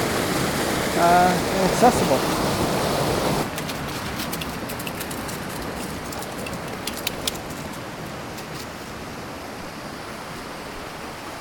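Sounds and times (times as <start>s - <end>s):
water splashing: 0.0s - 9.1s
waterfall on an easy accessible hiking trail roaring: 0.0s - 11.3s
speech: 1.0s - 2.8s.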